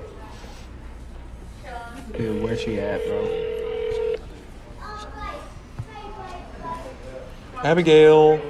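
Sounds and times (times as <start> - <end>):
speech: 2.1 - 3.6, 7.6 - 8.4
electronic phone tone as a phone call is placed: 2.2 - 4.2.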